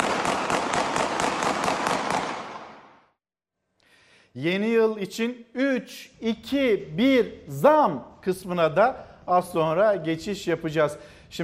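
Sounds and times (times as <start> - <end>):
celebratory gunfire: 0.0 - 3.1
speech: 4.4 - 11.4.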